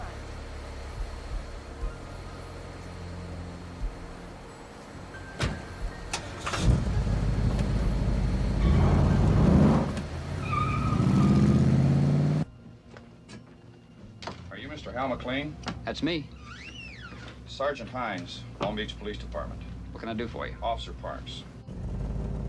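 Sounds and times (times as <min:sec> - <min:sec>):
car door shutting: 0:05.4 - 0:07.8
car engine starting and revving as the car pulls away: 0:06.1 - 0:12.5, 0:21.7 - 0:22.4
speech: 0:15.0 - 0:16.4, 0:17.6 - 0:21.5.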